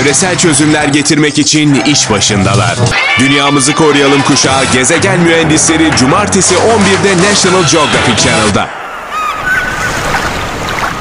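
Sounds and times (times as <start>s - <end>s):
speech: 0.0s - 8.8s
sea waves washing onto a shore: 8.8s - 10.9s.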